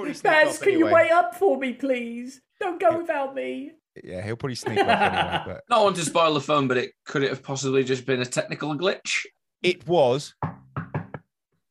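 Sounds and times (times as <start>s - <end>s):
speech: 0.0s - 10.6s
laughter: 4.6s - 6.1s
knocking on a table: 10.4s - 11.2s.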